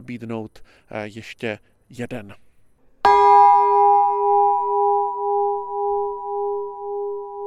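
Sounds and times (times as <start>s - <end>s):
speech: 0.1s - 2.4s
bell strike at Pecka Castle: 3.1s - 7.4s.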